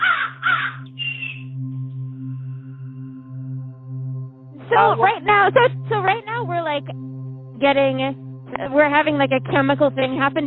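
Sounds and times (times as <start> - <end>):
crows cawing: 0.0 - 1.4
steady low hum: 0.8 - 10.4
speech: 4.8 - 10.4.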